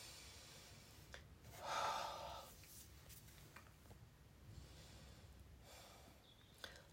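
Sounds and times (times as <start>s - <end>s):
deep breath inhaled during a guided breathing and sound session: 0.0s - 2.6s.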